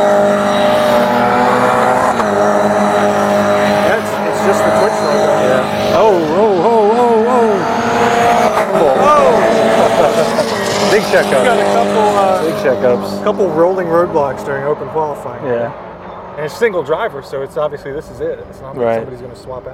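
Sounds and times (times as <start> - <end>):
race car engines roaring during qualifying: 0.0 - 19.7
laughter: 8.4 - 12.8
speech: 12.8 - 19.7.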